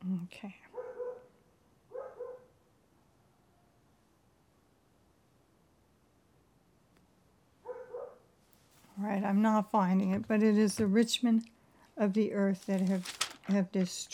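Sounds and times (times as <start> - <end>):
speech: 0.3 - 0.7, 9.0 - 14.1
dogs barking: 0.8 - 1.3, 1.9 - 2.5, 7.6 - 8.2.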